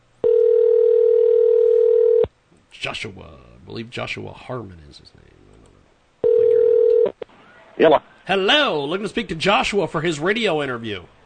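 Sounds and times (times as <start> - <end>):
telephone dial tone while a call is being placed: 0.2 - 2.3, 6.2 - 7.1
speech: 2.8 - 5.3, 7.8 - 11.2.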